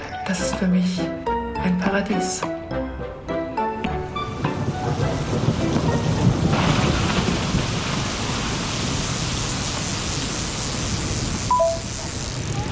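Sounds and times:
speech: 0:00.3 - 0:03.1
heavy pouring rain in a thunderstorm: 0:04.1 - 0:12.7
low thunder rumbling: 0:04.3 - 0:12.7.

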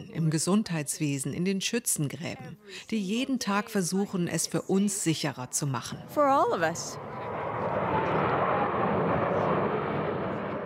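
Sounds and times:
speech: 0:00.2 - 0:07.2
jet aircraft flying overhead in formation: 0:06.0 - 0:10.6.

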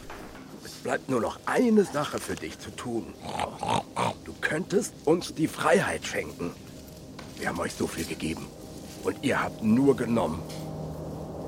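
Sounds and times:
speech: 0:00.8 - 0:06.7, 0:07.4 - 0:10.7
domestic pig oinking: 0:03.2 - 0:04.2.

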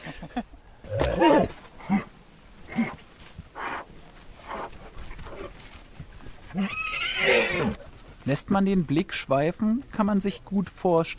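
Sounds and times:
Konik wild ponies on open grassland neighing and whinnying: 0:00.9 - 0:02.1, 0:06.5 - 0:07.9
speech: 0:08.3 - 0:11.1.

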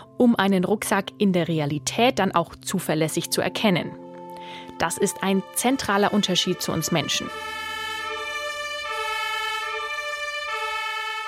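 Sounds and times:
speech: 0:00.2 - 0:04.0, 0:04.8 - 0:07.6
fire engine two-tone siren: 0:05.2 - 0:11.2.

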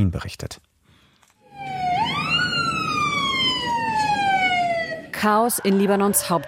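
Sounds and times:
speech: 0:00.0 - 0:00.7, 0:05.2 - 0:06.4
loud emergency siren wailing in a crowded street: 0:01.4 - 0:06.4
dense rumble of street noise and traffic: 0:01.5 - 0:06.4.

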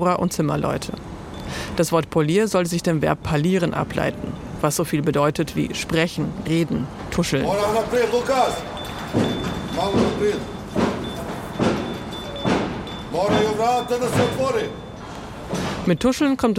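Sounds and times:
speech: 0:00.0 - 0:10.6, 0:13.2 - 0:14.8, 0:15.5 - 0:16.5
steady clatter of construction work: 0:07.0 - 0:16.1
metallic bangs at a construction site: 0:07.5 - 0:16.1
heavy thuds at a construction site: 0:08.7 - 0:15.9.

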